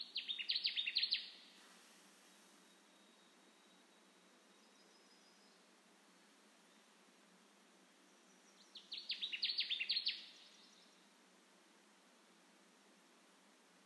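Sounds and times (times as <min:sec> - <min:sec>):
Connecticut warbler singing emphatic down-slurred notes: 0:00.0 - 0:01.5, 0:02.6 - 0:05.7, 0:08.1 - 0:11.2
quiet background hiss: 0:00.0 - 0:13.8.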